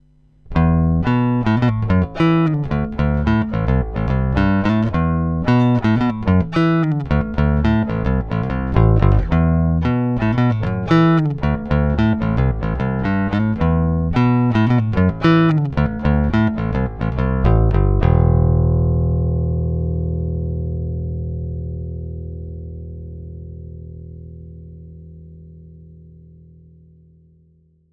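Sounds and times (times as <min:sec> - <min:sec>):
open strings on an instrument neck picked with a plectrum: 0:00.0 - 0:26.9.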